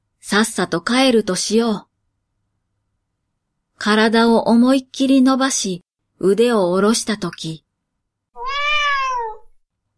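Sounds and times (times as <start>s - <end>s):
speech: 0.2s - 1.9s, 3.8s - 7.6s
cat meowing: 8.4s - 9.6s.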